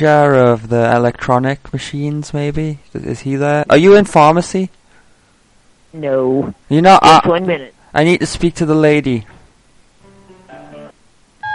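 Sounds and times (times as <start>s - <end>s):
speech: 0.0s - 4.8s, 5.9s - 9.4s
loud sustained telephone tone: 10.5s - 11.5s.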